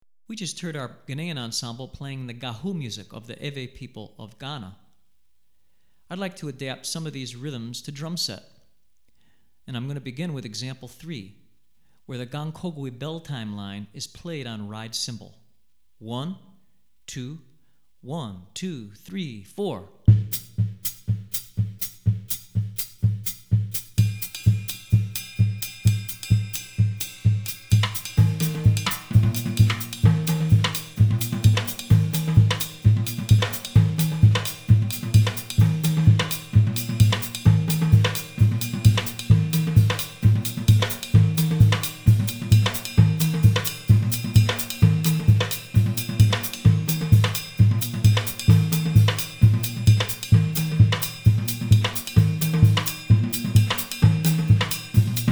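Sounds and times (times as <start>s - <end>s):
West African Gahu rhythm on a drum kit: 20.1s - 55.3s.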